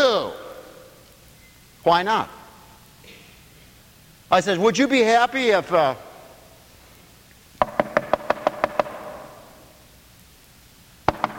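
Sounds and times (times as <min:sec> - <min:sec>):
speech: 0:01.8 - 0:02.4, 0:04.3 - 0:06.1
firm knocking on a door: 0:07.6 - 0:09.0, 0:11.1 - 0:11.3.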